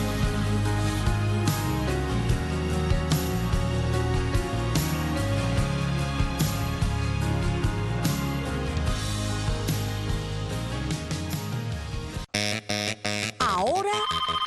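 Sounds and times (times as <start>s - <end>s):
busy music: 0.0s - 13.4s
phone ringtone for an incoming call: 12.4s - 14.4s.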